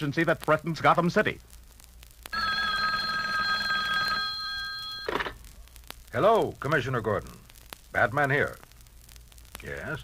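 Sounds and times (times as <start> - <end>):
speech: 0.0 - 1.6, 6.1 - 8.6, 9.6 - 10.0
hotline telephone bell ringing: 2.4 - 5.4
receiver being picked up clatter: 4.9 - 5.4.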